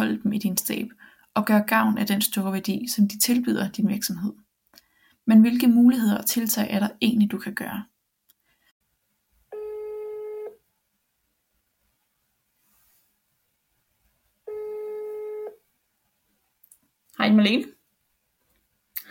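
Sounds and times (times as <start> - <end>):
speech: 0.0 - 4.4, 5.3 - 7.9, 17.3 - 17.8
ringback tone on an outgoing phone call: 9.5 - 10.6, 14.5 - 15.6.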